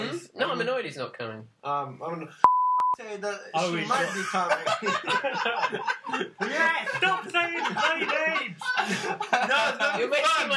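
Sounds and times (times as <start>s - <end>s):
speech: 0.2s - 10.5s
censor bleep: 2.4s - 3.0s
people chuckling: 3.8s - 10.5s.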